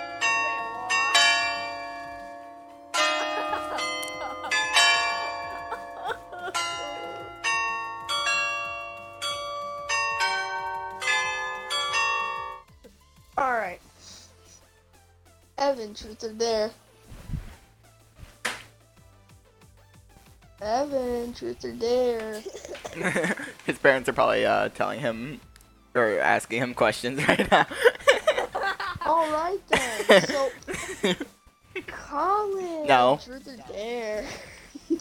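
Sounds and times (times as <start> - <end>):
wedding church bells ringing: 0.0 - 12.6
laughter: 3.0 - 7.3, 22.3 - 24.0, 27.1 - 31.9, 34.2 - 34.9
speech: 15.8 - 16.8, 20.6 - 27.9, 29.2 - 31.3, 32.2 - 34.5.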